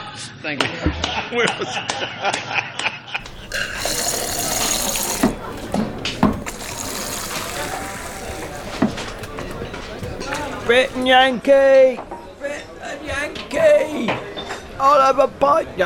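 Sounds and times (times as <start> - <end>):
speech: 0.2 - 2.9, 9.9 - 12.1, 14.8 - 15.8
laughter: 0.9 - 3.2
shower water spraying: 3.2 - 11.1.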